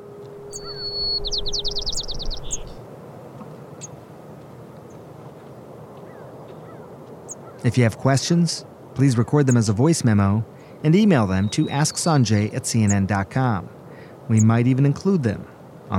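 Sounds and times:
bird buzzy trill outdoors: 0.0 - 2.8
birds chirping and tweeting outdoors: 0.0 - 2.8, 3.4 - 7.9, 8.7 - 15.9
low hiss and rumble: 0.0 - 15.9
speech: 7.6 - 15.9.

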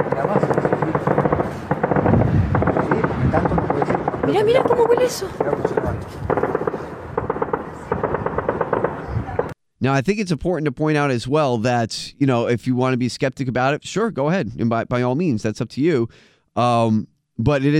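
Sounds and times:
rapid gunshot-like bangs: 0.0 - 9.5
speech: 4.4 - 6.2, 9.8 - 17.7
man speaking excitedly: 9.8 - 17.7.

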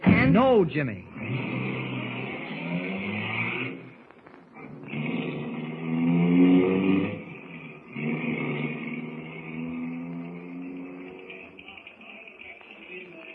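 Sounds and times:
speech: 0.1 - 1.9
car engine revving as the vehicle pulls away: 1.0 - 11.7.

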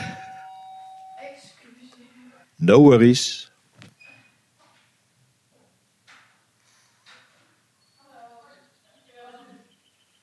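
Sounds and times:
two-tone doorbell chime: 0.0 - 1.4
speech: 2.6 - 3.5.

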